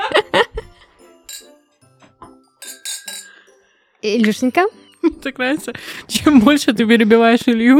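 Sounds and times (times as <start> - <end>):
laughter: 0.0 - 0.7
glasses clinking in a toast: 1.1 - 3.6
speech: 4.0 - 7.7.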